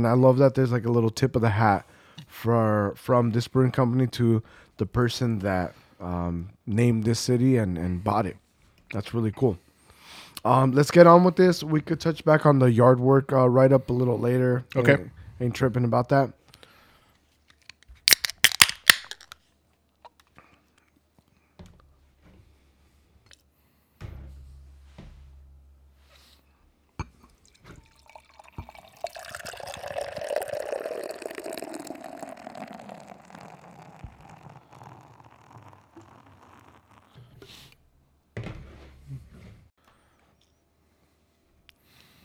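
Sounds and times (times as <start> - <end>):
speech: 0.0 - 16.4
small clicks: 17.5 - 19.4
quiet drips: 27.0 - 36.2
reddish-orange IPA beer pouring into a glass: 27.3 - 37.4.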